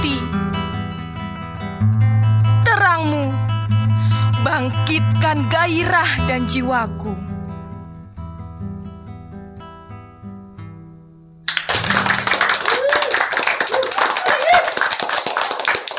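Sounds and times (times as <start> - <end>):
gentle plucked guitar notes: 0.0 - 11.4
speech: 4.6 - 7.3
school audience applause for a poem: 11.5 - 15.9
faint cheers: 12.0 - 15.2.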